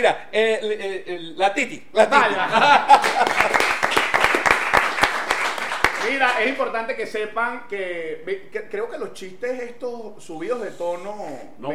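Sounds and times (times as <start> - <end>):
speech: 0.0 - 4.0, 6.0 - 11.7
laughter: 2.0 - 4.6
applause from a small group: 2.9 - 6.6.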